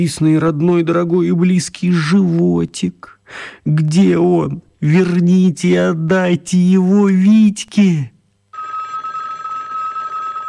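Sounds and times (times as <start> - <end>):
speech: 0.0 - 8.1
telephone bell ringing with bright trilling ring: 8.5 - 10.4.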